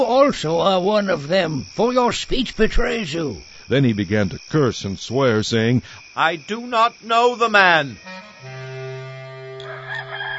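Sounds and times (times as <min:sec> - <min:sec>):
speech: 0:00.0 - 0:08.6
rooster crowing: 0:08.5 - 0:10.3.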